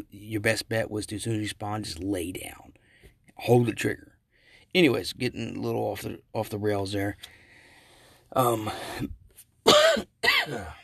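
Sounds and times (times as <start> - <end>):
speech: 0.1 - 2.7, 3.4 - 4.1, 4.7 - 7.4, 8.3 - 9.2, 10.0 - 10.8
person coughing: 9.6 - 10.8
person clearing throat: 9.7 - 10.8.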